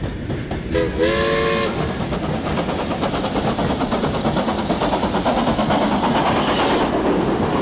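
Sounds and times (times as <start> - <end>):
steam engine chuffing and rattling along the track: 0.0 - 7.6
shrill steam train whistle: 0.7 - 2.0.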